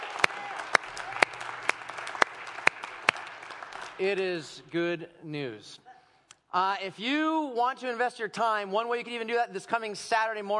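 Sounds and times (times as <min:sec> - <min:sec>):
sharp individual claps: 0:00.0 - 0:04.2
audience applauding: 0:00.0 - 0:04.4
speech: 0:04.0 - 0:05.9, 0:06.5 - 0:10.5.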